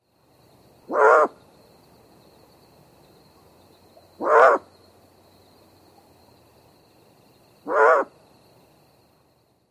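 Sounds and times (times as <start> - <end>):
adult Great Horned Owl barking alarm calls: 0.8 - 1.4, 4.0 - 4.7, 7.6 - 8.1.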